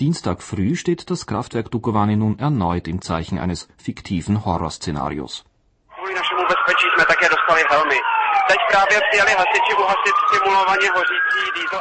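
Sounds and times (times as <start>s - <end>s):
speech: 0.0s - 5.5s, 6.5s - 11.7s
overlapping voices and chatter: 5.9s - 11.7s
wailing sirens: 6.0s - 11.7s.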